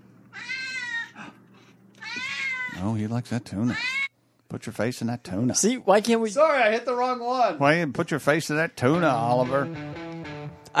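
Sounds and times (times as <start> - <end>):
cat meowing faintly: 0.3 - 1.2, 2.0 - 2.9, 3.7 - 4.1
speech: 2.8 - 10.0.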